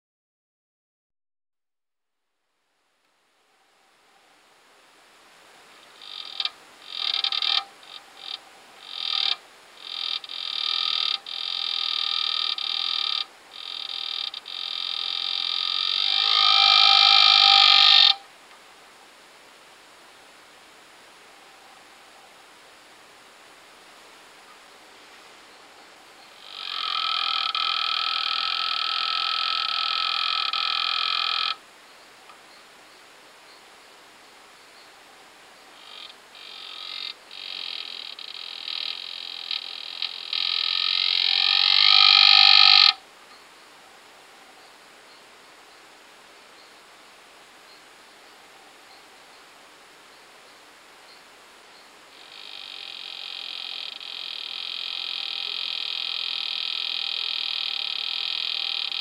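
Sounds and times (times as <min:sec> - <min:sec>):
Pipa aspera calling: 0:05.8 - 0:18.3, 0:25.5 - 0:32.7, 0:35.7 - 0:43.4, 0:51.1 - 0:59.0.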